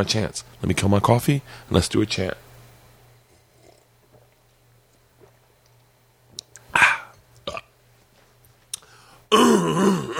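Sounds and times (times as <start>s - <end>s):
speech: 0.0s - 2.5s
person clearing throat before singing a chant: 6.7s - 7.8s, 9.3s - 10.1s.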